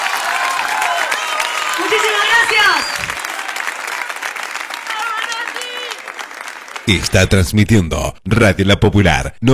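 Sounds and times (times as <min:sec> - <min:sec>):
crowd applauding: 0:00.0 - 0:07.4
cheers and voices from a crowd: 0:00.0 - 0:07.5
speech: 0:01.9 - 0:03.2, 0:06.9 - 0:09.5.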